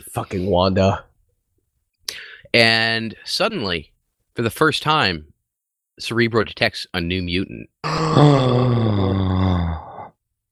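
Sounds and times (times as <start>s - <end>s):
speech: 0.2s - 1.1s, 2.5s - 5.3s, 6.0s - 9.3s
person giving a shocked gasp and drawn-out voiced cry: 7.8s - 10.1s.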